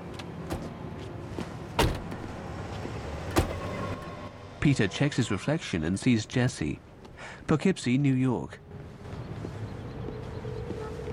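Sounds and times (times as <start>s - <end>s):
steady low hum from the stationary vehicle: 0.0s - 11.1s
car doors opening and thumping shut: 0.4s - 0.7s, 1.8s - 2.4s, 3.3s - 4.0s
speech: 4.6s - 8.6s.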